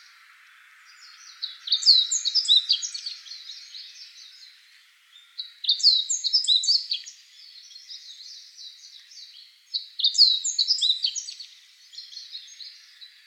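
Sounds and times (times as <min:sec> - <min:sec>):
faint background hiss: 0:00.0 - 0:13.2
meadow bunting twittering song: 0:00.0 - 0:13.2.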